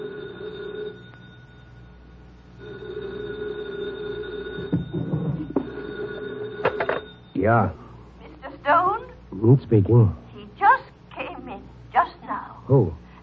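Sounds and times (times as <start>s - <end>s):
telephone bell ringing: 0.0s - 7.4s
clattering knocks: 4.5s - 5.8s
speech: 7.4s - 7.8s, 9.4s - 10.2s, 12.7s - 13.0s.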